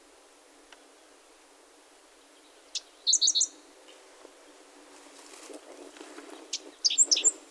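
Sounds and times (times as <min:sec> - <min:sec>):
five-striped sparrow calls: 0:02.7 - 0:03.6, 0:06.5 - 0:07.4.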